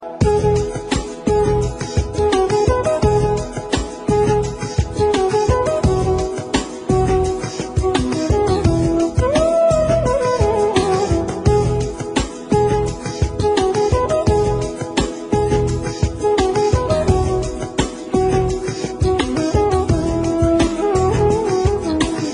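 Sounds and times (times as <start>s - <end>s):
flute: 0.0s - 22.3s.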